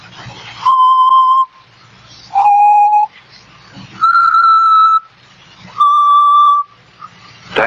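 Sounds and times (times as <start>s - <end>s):
soft noise: 0.0s - 7.6s
person whistling a tune: 0.6s - 1.6s, 2.3s - 3.1s, 4.0s - 5.1s, 5.8s - 6.8s.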